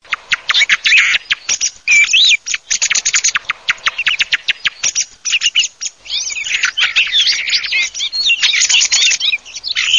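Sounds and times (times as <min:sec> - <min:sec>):
thrush birdsound: 0:00.0 - 0:09.9.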